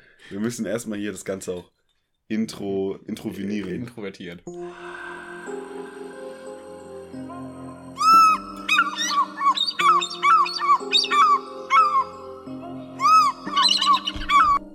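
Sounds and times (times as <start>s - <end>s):
speech: 0.3s - 5.0s
steady sustained musical drone: 4.5s - 14.7s
bald eagle high chittering call: 8.0s - 12.2s, 13.0s - 14.6s.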